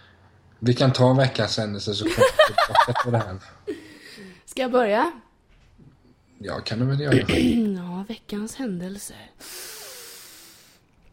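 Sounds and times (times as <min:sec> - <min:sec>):
speech: 0:00.6 - 0:03.8, 0:04.5 - 0:05.2, 0:06.4 - 0:09.7
laughter: 0:02.1 - 0:03.8
long airy breath: 0:09.4 - 0:10.8.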